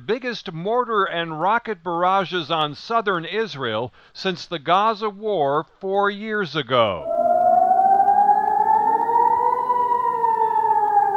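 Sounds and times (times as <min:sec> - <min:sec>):
speech: 0:00.1 - 0:07.2
air raid siren wailing: 0:06.9 - 0:11.1.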